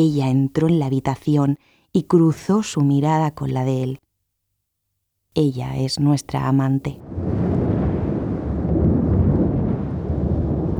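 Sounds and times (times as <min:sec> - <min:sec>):
speech: 0:00.0 - 0:04.0, 0:05.3 - 0:07.4
deep rolling thunder rumble: 0:07.0 - 0:10.7.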